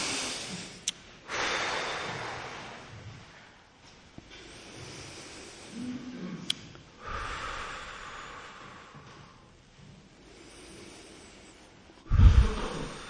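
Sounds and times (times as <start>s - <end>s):
deep cleansing breaths: 0.0s - 13.0s.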